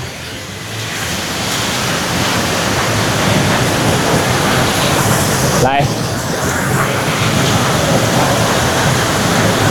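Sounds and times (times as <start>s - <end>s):
waterfall roaring: 0.0s - 9.6s
speech: 5.6s - 6.0s.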